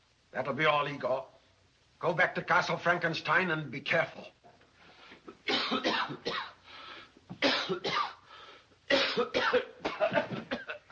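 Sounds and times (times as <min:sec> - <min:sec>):
speech: 0:00.4 - 0:01.4, 0:02.0 - 0:04.4, 0:05.7 - 0:06.4, 0:07.4 - 0:08.0
person coughing with a bone stuck in the throat and spitting: 0:05.4 - 0:06.6, 0:07.3 - 0:08.2, 0:08.9 - 0:10.9.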